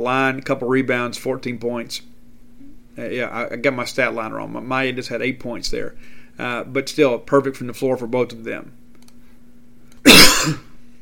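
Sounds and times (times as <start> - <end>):
speech: 0.0 - 2.1, 3.0 - 8.8, 10.1 - 10.6
faint steady hum: 0.0 - 11.0
loud harsh breathy cough: 10.0 - 10.8.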